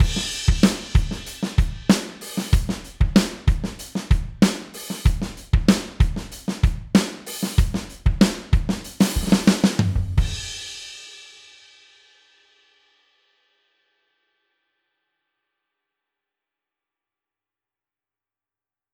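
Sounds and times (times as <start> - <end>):
dry drums: 0.0 - 10.7.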